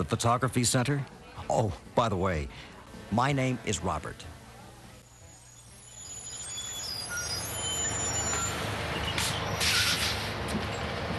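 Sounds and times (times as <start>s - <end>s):
speech: 0.0s - 4.4s
large bus engine droning as it pulls in: 6.0s - 11.1s
bus air brakes hissing: 7.0s - 10.4s.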